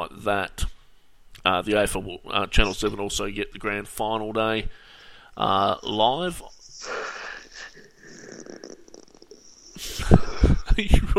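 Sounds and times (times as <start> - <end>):
speech: 0.0 - 0.7, 1.4 - 7.0, 10.8 - 11.1
person yawning: 5.8 - 10.6.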